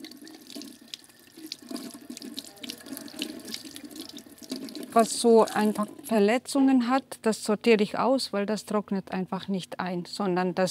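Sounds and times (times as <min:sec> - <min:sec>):
faint running tap water splashing into a sink while washing ornamental gourds at a nursery: 0:00.0 - 0:06.1
speech: 0:05.0 - 0:10.6.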